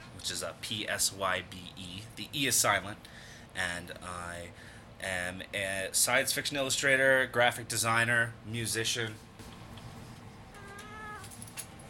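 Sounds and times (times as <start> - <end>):
low hum: 0.0 - 11.8
speech: 0.2 - 9.3
cat meowing: 10.5 - 11.4.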